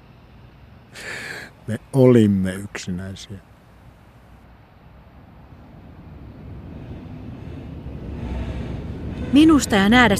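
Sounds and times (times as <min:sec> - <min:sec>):
faint hum: 0:00.0 - 0:10.1
metro train travelling: 0:00.0 - 0:10.1
speech: 0:01.7 - 0:03.5, 0:09.3 - 0:10.1.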